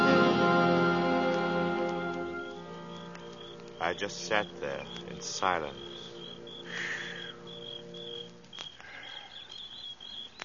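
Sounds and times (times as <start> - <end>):
crickets chirping outdoors: 0.2 - 10.4
faint bird calls: 2.9 - 10.4
speech: 3.8 - 5.9.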